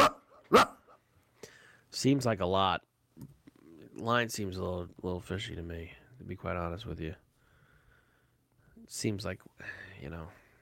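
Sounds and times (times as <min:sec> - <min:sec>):
dog barking: 0:00.0 - 0:01.0
speech: 0:00.5 - 0:00.8, 0:01.9 - 0:03.4, 0:04.0 - 0:07.2, 0:08.9 - 0:10.4.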